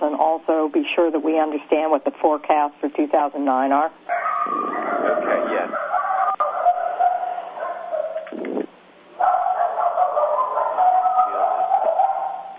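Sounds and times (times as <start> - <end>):
speech: 0.0 - 5.9
dog barking and yipping over a phone line: 4.1 - 8.3, 9.2 - 12.5.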